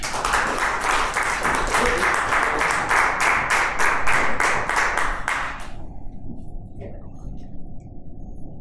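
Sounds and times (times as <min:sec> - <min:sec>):
crowd clapping and applauding: 0:00.0 - 0:05.8.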